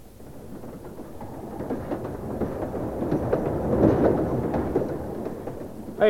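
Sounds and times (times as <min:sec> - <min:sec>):
fast train rushing through a small station without stopping: 0:00.0 - 0:06.0.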